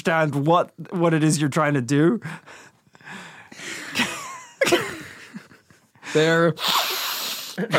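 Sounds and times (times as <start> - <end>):
speech: 0.0 - 4.1, 6.1 - 6.8, 7.6 - 7.7
laughter: 3.6 - 6.2, 7.6 - 7.7
person sniffing: 6.6 - 7.7.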